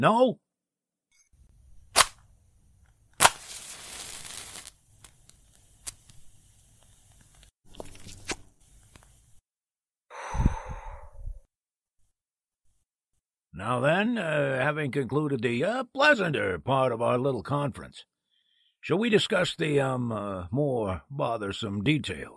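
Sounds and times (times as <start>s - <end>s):
speech: 0.0s - 0.4s, 13.6s - 18.1s, 18.8s - 22.3s
match-like strike and sizzling flare lighting a cigar: 2.0s - 2.2s, 3.1s - 7.5s
sharp snap: 2.0s - 2.2s
breathy puff: 10.1s - 11.4s.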